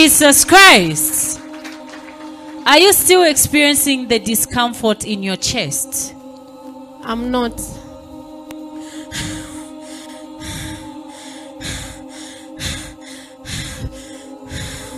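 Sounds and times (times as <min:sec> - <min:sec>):
speech: 0:00.0 - 0:01.2, 0:02.6 - 0:06.2, 0:07.0 - 0:07.8, 0:09.1 - 0:09.4
woman breathing deeply: 0:07.7 - 0:14.9.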